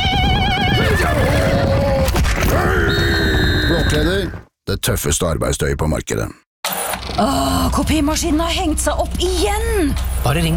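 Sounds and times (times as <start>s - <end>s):
horse on the Mongolian steppes neighing: 0.0s - 4.4s
speech: 3.9s - 6.4s, 7.1s - 10.5s.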